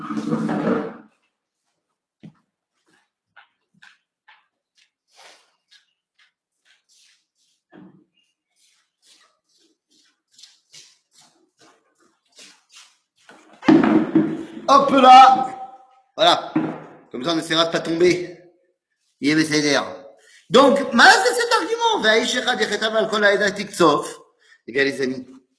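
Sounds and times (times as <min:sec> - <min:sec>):
breaking chair being moved and scraped: 0:00.0 - 0:01.3
loud bump of furniture: 0:13.6 - 0:14.7, 0:16.5 - 0:17.1
speech: 0:14.9 - 0:15.5, 0:17.3 - 0:18.4, 0:19.2 - 0:21.4, 0:22.0 - 0:25.4.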